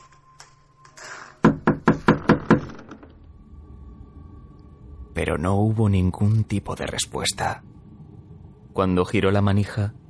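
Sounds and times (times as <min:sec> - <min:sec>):
firm knocking on a wooden front door: 0:01.4 - 0:03.0
speech: 0:05.2 - 0:07.8, 0:08.8 - 0:10.0.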